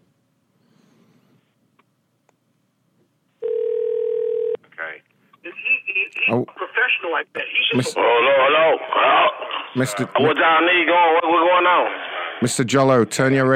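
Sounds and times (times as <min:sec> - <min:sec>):
steady telephone tone as a call is placed to a cell phone: 0:03.4 - 0:04.6
speech: 0:06.3 - 0:13.5.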